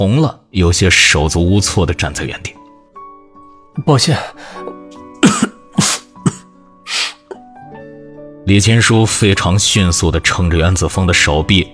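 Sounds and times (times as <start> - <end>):
speech: 0.0 - 2.6, 3.8 - 5.4, 8.5 - 11.7
person coughing while covering their mouth: 5.2 - 7.4.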